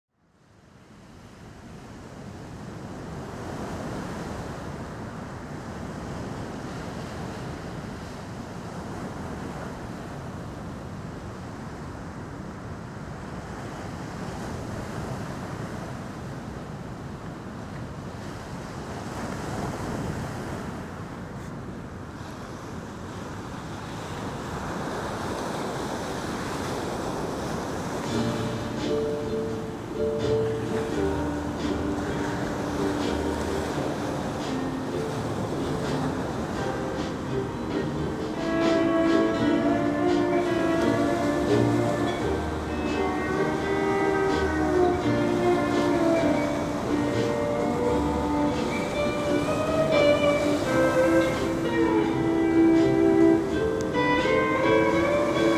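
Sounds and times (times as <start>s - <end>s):
ocean waves on Kauai: 0.4s - 55.5s
song playing: 28.1s - 55.5s.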